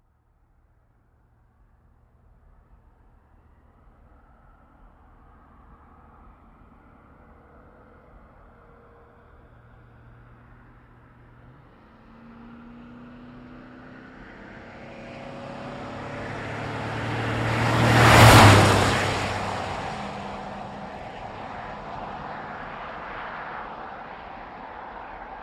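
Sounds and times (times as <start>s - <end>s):
GMC Savana truck passing by fast revving: 11.5s - 24.0s.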